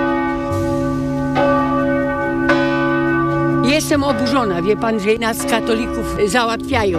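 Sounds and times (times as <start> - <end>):
church bell ringing: 0.0 - 6.9
speech: 3.9 - 6.9.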